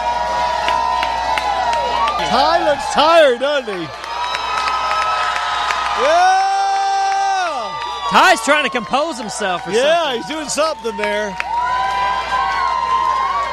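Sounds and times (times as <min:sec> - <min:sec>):
large crowd screaming and cheering at a concert: 0:00.0 - 0:13.5
speech: 0:02.3 - 0:04.0, 0:06.0 - 0:06.4, 0:08.1 - 0:11.6.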